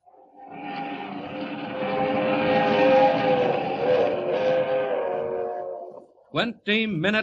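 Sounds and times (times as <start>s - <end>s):
streamliner train roaring past at 80 miles an hour: 0.3s - 5.9s
person speaking: 6.4s - 7.2s.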